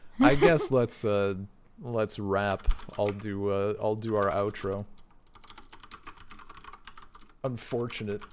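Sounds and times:
laughter: 0.2 - 0.8
speech: 0.2 - 4.9, 7.4 - 8.3
computer keyboard typing: 2.4 - 3.3, 4.0 - 8.3.

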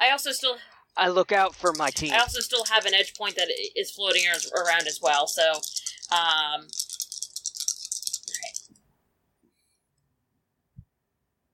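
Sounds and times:
speech: 0.2 - 6.8
dice rattling in a cup or hand: 1.4 - 8.8.

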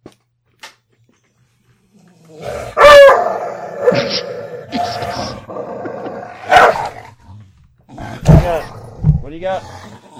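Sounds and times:
dog growling while chewing on something: 2.0 - 10.1
speech: 4.1 - 4.3, 9.4 - 9.8.

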